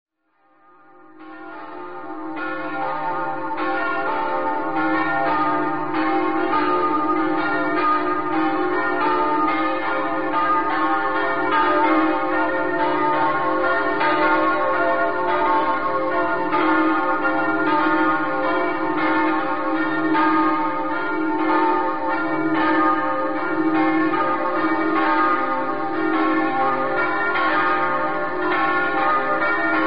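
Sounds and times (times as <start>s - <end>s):
bells ringing: 0.8s - 29.8s.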